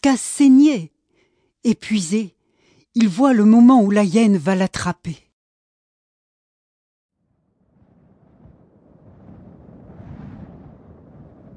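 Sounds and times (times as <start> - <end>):
speech: 0.0 - 1.0, 1.6 - 5.2
wind gusting in a rough rumbling roar: 7.3 - 11.5.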